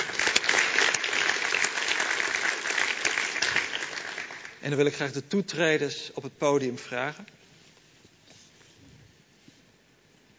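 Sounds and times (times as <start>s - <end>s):
crowd applauding: 0.0s - 4.7s
speech: 4.6s - 7.4s.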